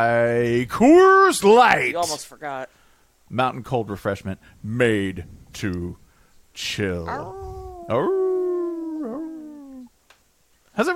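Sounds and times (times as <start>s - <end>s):
speech: 0.0s - 6.0s, 6.6s - 8.2s, 10.8s - 10.9s
person imitating a howl: 7.1s - 9.9s.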